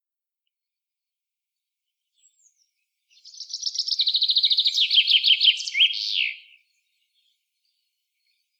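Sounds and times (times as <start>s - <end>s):
Common chaffinch Fringilla coelebs song: 2.2s - 7.8s.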